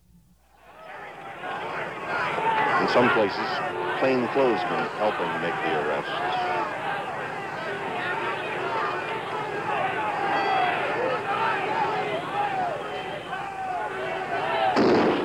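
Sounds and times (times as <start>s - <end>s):
crowd shouting during a street disturbance with arrests: 0.7s - 15.2s
speech: 2.9s - 6.6s
gas-gun shot fired at a crowd during a street disturbance: 14.8s - 15.2s.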